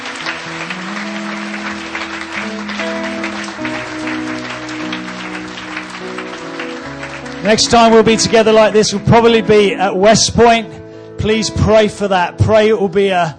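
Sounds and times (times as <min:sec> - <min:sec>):
audience applauding in a church: 0:00.0 - 0:09.3
sustained organ or keyboard chords: 0:00.0 - 0:13.3
speech: 0:07.4 - 0:13.3.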